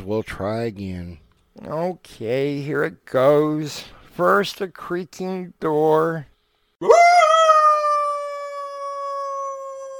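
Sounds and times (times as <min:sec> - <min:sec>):
speech: 0:00.0 - 0:07.1
dog howl sound effect in a ghost scene: 0:06.8 - 0:09.9.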